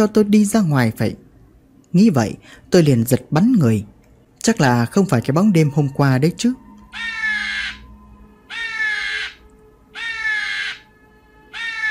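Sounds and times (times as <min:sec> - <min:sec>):
speech: 0:00.0 - 0:01.2, 0:01.9 - 0:07.2
crows cawing in a forest: 0:06.9 - 0:07.9, 0:08.5 - 0:10.9, 0:11.5 - 0:11.9.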